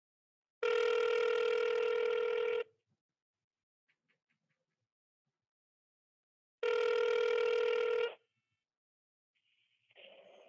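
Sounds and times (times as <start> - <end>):
loud buzzing telephone rings: 0.6 - 2.7, 6.6 - 8.2.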